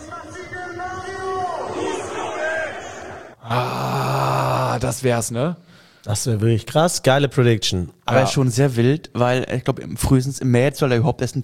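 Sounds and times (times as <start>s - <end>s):
stadium crowd at a football match chanting and yelling: 0.0s - 3.4s
stadium crowd at a football match roaring: 0.0s - 4.8s
speech: 3.5s - 3.8s, 4.9s - 11.4s.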